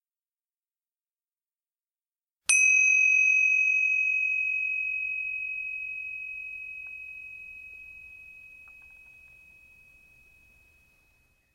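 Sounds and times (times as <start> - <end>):
meditation bell ringing: 2.5 - 11.5.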